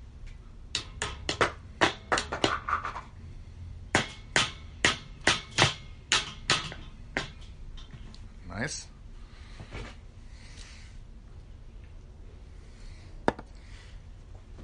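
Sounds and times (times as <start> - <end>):
hammer tapping small metal retaining caps onto a wheel: 0.7 - 3.1, 3.9 - 8.1
speech: 8.6 - 8.9.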